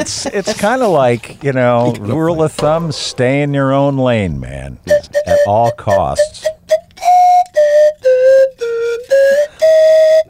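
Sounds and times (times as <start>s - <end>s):
speech: 0.0s - 6.6s
slide whistle notes: 4.9s - 10.2s.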